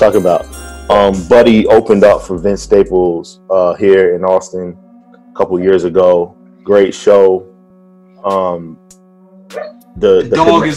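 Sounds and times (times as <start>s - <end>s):
speech: 0.0s - 4.8s, 5.4s - 7.5s, 8.2s - 8.8s, 9.5s - 10.7s
dog barking: 9.6s - 9.8s.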